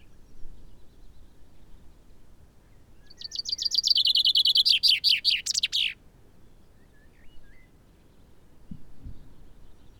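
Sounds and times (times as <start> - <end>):
common chaffinch Fringilla coelebs singing: 3.1 - 6.0.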